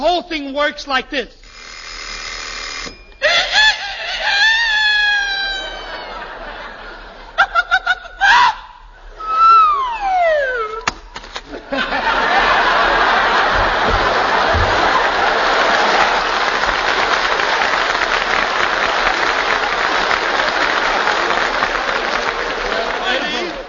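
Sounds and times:
speech: 0.0s - 1.4s
alarm clock ringing: 1.4s - 3.5s
laughter: 3.2s - 23.6s
faint whooping calls: 9.2s - 10.8s.

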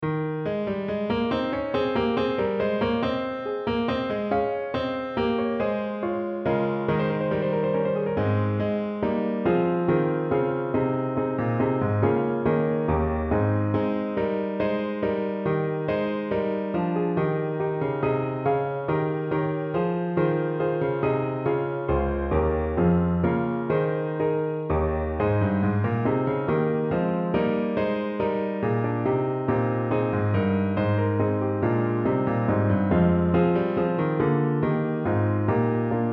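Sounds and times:
musical accompaniment in Ab: 0.0s - 36.1s.

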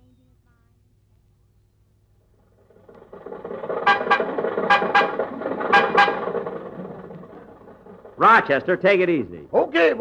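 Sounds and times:
old car engine sputtering and chugging to life: 2.1s - 9.9s
speech: 8.2s - 9.9s.

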